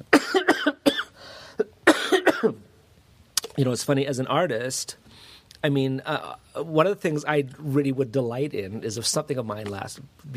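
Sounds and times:
person coughing harshly: 0.1s - 2.7s
speech: 3.6s - 10.3s.

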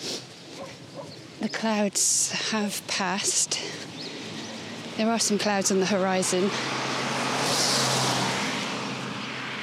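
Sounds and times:
speech: 1.4s - 4.0s, 5.0s - 7.0s
car passing by fast: 6.3s - 9.6s.

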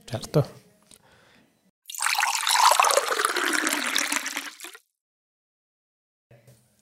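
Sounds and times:
speech: 0.1s - 0.6s
heated water pouring to prepare tea: 1.9s - 4.8s.

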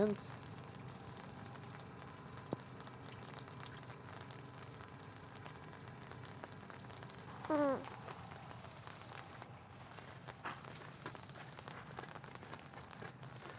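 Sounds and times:
speech: 0.0s - 0.4s
steady rain pattering on hard surfaces: 0.0s - 13.5s
high vocal squeak: 7.4s - 8.0s.

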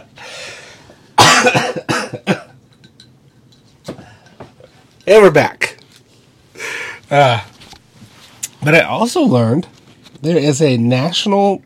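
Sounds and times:
person coughing harshly: 1.2s - 2.6s
speech: 5.1s - 5.6s, 7.1s - 7.5s, 8.6s - 11.6s.

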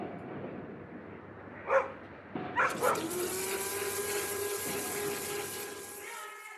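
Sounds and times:
steady mechanical hum: 0.0s - 6.5s
big dog barking: 1.6s - 2.0s, 2.6s - 3.1s
clatter of work and cooking: 2.6s - 6.5s
washing machine churning: 2.7s - 6.2s.

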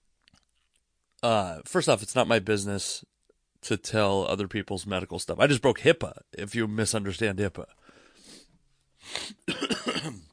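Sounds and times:
speech: 1.2s - 7.8s
breathing: 7.7s - 9.4s
person coughing: 9.2s - 10.3s.

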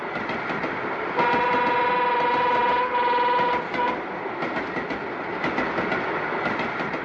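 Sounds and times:
train with wagons rumbling and clattering past: 0.0s - 7.0s
train horn: 1.2s - 4.0s.

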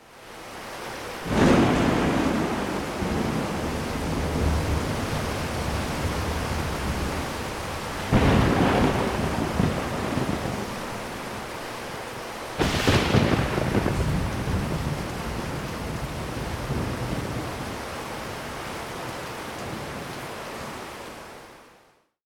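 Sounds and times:
heavy downpour of pouring rain in a thunderstorm: 0.0s - 22.2s
loud thunder cracks rumbling: 1.3s - 11.2s, 12.6s - 17.6s.

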